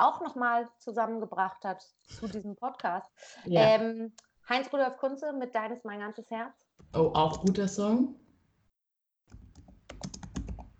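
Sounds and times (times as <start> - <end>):
speech: 0.0 - 8.2
typing on a computer keyboard: 9.3 - 10.7.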